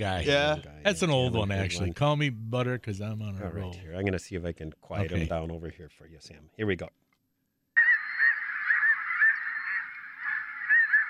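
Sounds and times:
speech: 0.0 - 7.0
flock of snow geese honking: 7.8 - 11.0.

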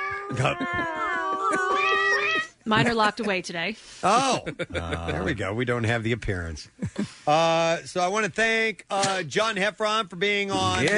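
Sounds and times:
house cat meowing: 0.0 - 2.5
speech: 0.3 - 10.9.

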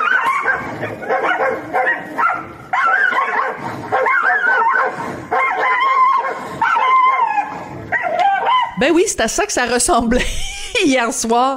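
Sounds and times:
dogs yapping and barking: 0.0 - 8.8
speech: 8.8 - 11.5
laughter: 10.0 - 11.1.

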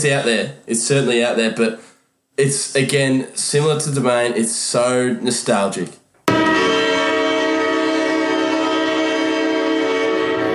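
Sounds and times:
speech: 0.0 - 6.0
football stadium siren at Football Park in Adelaide: 6.3 - 10.5.

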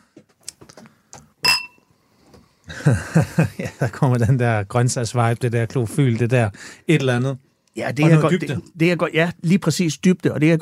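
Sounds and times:
glasses clinking in a toast during a drink tasting: 1.4 - 1.9
laughter: 2.7 - 4.6
speech: 2.7 - 10.6.

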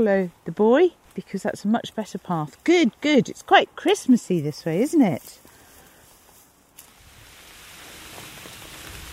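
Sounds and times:
speech: 0.0 - 5.4
rain falling outdoors under a tree: 6.9 - 9.1.

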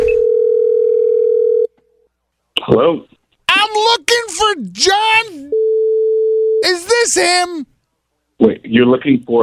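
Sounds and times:
ringback tone on an outgoing phone call: 0.1 - 1.7, 5.5 - 6.6
speech: 2.7 - 5.6, 6.6 - 7.7, 8.4 - 9.4.

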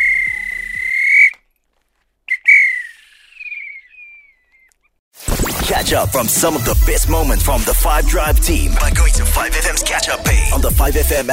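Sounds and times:
referee's whistle blasts: 0.0 - 1.4, 2.3 - 4.3
speech: 5.8 - 11.3.

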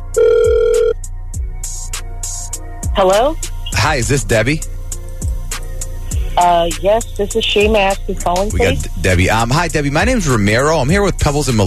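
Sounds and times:
outgoing phone ringback tone: 0.1 - 1.0
speech: 3.0 - 4.7, 6.4 - 11.6
quiet phone line noise with faint hissy bursts: 6.1 - 9.6.

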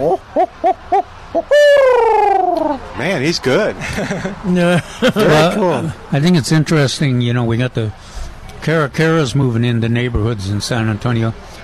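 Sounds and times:
person imitating a barred owl hoot: 0.0 - 2.8
speech: 3.2 - 11.5
laughter: 3.7 - 5.9.

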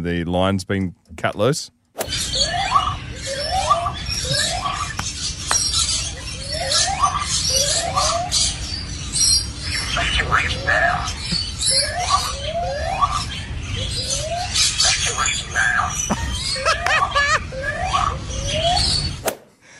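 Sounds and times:
speech: 0.0 - 2.3
constant low outdoor rumble: 0.0 - 19.2
lyrebird in a zoo imitating the zoo's evacuation siren: 2.1 - 19.2
laughter: 16.0 - 17.5.

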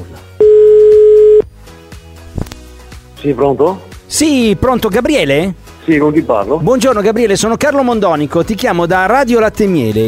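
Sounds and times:
ringback tone on an outgoing phone call: 0.4 - 1.4
speech: 3.2 - 10.0.

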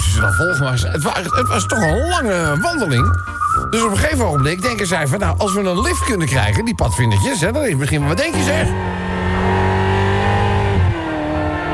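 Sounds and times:
speech: 0.2 - 9.2
Ferrari sports car engine roaring while approaching: 8.2 - 11.7.

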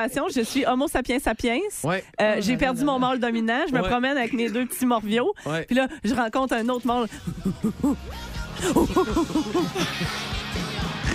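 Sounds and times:
speech: 0.0 - 10.7
laughter: 7.0 - 10.8
person imitating monkey jungle call: 7.2 - 10.2.

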